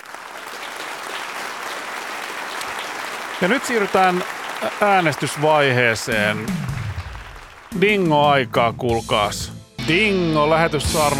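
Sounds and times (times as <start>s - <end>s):
applause: 0.0s - 8.2s
speech: 3.4s - 6.7s, 7.7s - 11.1s.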